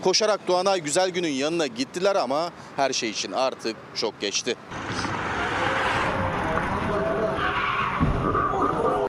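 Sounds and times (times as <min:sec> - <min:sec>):
speech: 0:00.0 - 0:05.2
steady roar of traffic noise: 0:00.0 - 0:09.0
speeding car brakes screeching: 0:04.7 - 0:08.7
speeding car tires skidding: 0:04.7 - 0:09.0
thud of a car striking a person crossing the road: 0:08.0 - 0:08.4.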